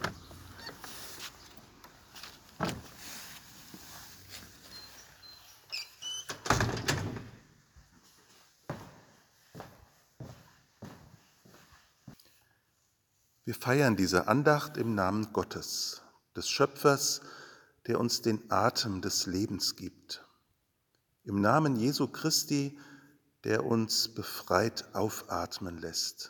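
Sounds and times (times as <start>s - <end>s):
heavy church door creaking and closing with a booming thud: 0.0s - 1.6s, 2.6s - 3.0s, 5.8s - 7.6s
soft shuffling: 0.0s - 5.8s, 7.6s - 12.3s
footsteps on a hard floor: 2.1s - 5.2s, 7.8s - 12.2s
speech: 13.5s - 20.2s, 21.3s - 26.2s.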